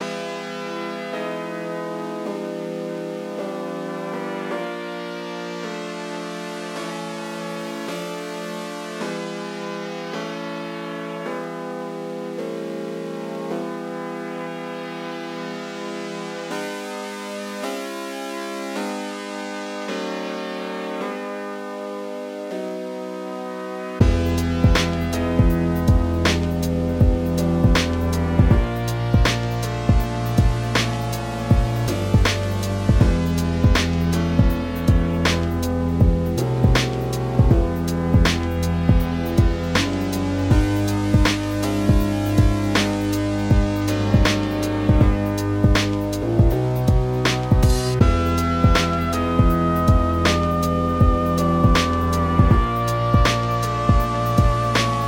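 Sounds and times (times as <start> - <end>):
19edo electronic beat sketch: 24.0 - 55.0.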